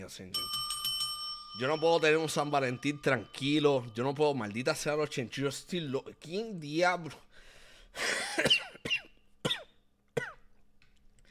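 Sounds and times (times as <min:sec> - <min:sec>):
speech: 0:00.0 - 0:00.6, 0:01.5 - 0:09.0
quiet breathing: 0:07.2 - 0:08.2
harsh coughing: 0:08.0 - 0:10.5.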